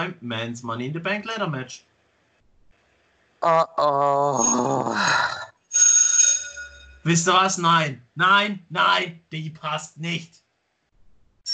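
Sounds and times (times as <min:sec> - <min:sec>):
speech: 0:00.0 - 0:01.9, 0:03.4 - 0:05.4, 0:07.0 - 0:10.4
bright metallic bell ringing: 0:05.7 - 0:07.1.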